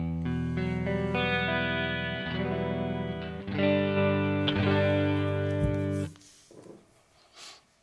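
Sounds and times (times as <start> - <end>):
electric guitar chords with phaser chorus and flanger effects: 0.0 - 6.2.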